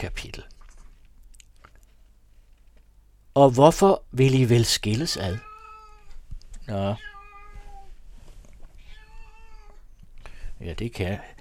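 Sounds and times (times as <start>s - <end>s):
speech: 0.0s - 0.4s, 3.4s - 5.5s, 6.7s - 7.1s, 10.6s - 11.3s
cat meowing, complaining: 5.2s - 8.0s, 8.7s - 9.9s.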